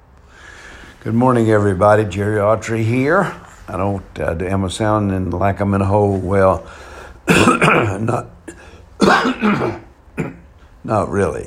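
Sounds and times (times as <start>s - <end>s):
speech: 1.0s - 8.3s, 9.0s - 10.3s, 10.9s - 11.4s
person coughing: 7.2s - 10.5s
person clearing throat: 7.3s - 10.5s.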